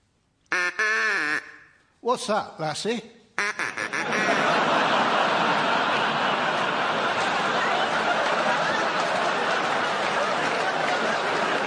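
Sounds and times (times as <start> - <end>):
human voice imitating a loud nasal duck quack: 0.5 - 1.7, 3.4 - 4.4
speech: 2.1 - 3.2
laughter: 3.6 - 11.6.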